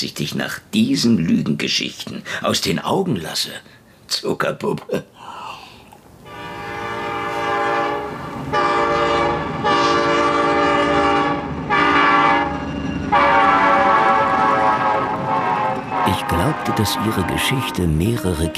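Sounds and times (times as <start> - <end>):
speech: 0.0 - 5.4, 16.7 - 18.5
sustained horn-like tones: 6.2 - 18.5
morning train to Kiev rumbling on rails: 6.4 - 18.5.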